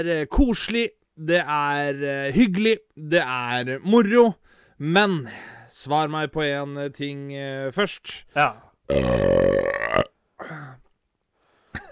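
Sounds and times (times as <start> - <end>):
speech: 0.0 - 10.1
long loud burp: 8.9 - 10.2.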